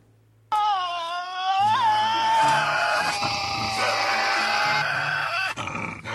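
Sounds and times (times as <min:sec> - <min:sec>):
male and female Tasmanian devils screeching with a wavering high wail: 0:00.5 - 0:06.1
Tasmanian devils harsh rasping growls: 0:02.6 - 0:06.1.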